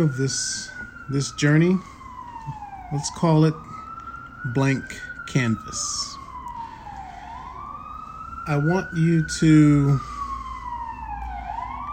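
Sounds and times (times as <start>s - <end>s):
speech: 0.0s - 1.9s, 2.5s - 3.7s, 4.4s - 6.2s, 8.5s - 10.1s
ambulance siren wailing as the ambulance passes by: 0.0s - 11.9s.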